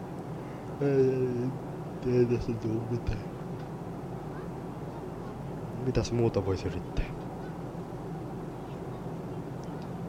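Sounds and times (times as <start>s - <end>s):
airplane cabin drone: 0.0s - 10.0s
speech: 0.8s - 3.4s, 5.8s - 7.2s.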